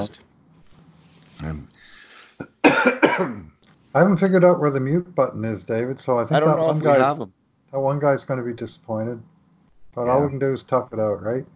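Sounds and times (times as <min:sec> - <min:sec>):
speech: 0:01.4 - 0:01.7, 0:03.2 - 0:09.3, 0:10.0 - 0:11.5
throaty breath noise: 0:01.7 - 0:02.5
person coughing: 0:02.4 - 0:03.5.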